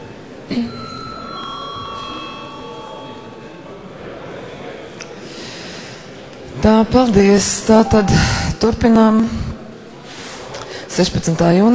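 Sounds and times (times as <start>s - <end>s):
murmur of room noise and movement in parliament: 0.0s - 11.7s
electric bell ringing at a sitting of parliament: 0.5s - 4.0s
speech: 6.6s - 9.5s, 11.0s - 11.7s.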